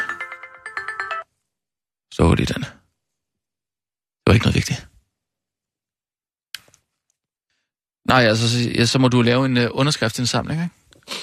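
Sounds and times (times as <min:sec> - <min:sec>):
mobile phone ringtone with a bright melodic pattern: 0:00.0 - 0:01.3
speech: 0:02.2 - 0:02.8, 0:04.3 - 0:04.9, 0:08.1 - 0:11.2.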